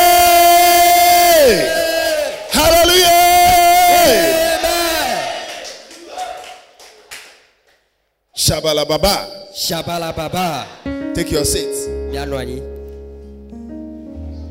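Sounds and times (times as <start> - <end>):
crowd shouting together in long sustained cries: 0.0 - 6.6
sharp hand claps: 5.5 - 7.9
speech: 8.6 - 12.7.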